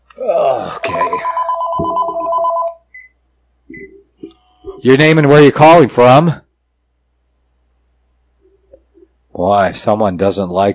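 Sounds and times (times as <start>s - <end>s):
speech: 0.2s - 1.9s, 4.8s - 6.4s, 9.4s - 10.7s
telephone ringing with electronic trill: 0.8s - 2.9s.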